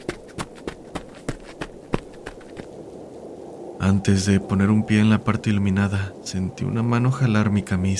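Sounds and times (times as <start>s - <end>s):
running footsteps of a person running toward an entrance gate: 0.0s - 2.8s
speech: 3.9s - 7.9s.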